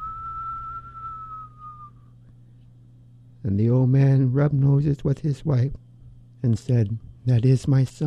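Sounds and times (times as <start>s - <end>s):
person whistling imitating a howling north wind: 0.0s - 2.2s
low hum: 0.0s - 8.0s
speech: 3.4s - 8.0s.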